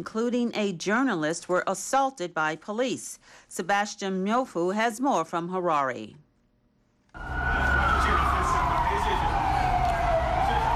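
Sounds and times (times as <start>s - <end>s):
speech: 0.0s - 6.2s, 7.1s - 7.7s
police water cannon vehicle siren wailing at an anti-government protest in Harare: 7.2s - 10.7s.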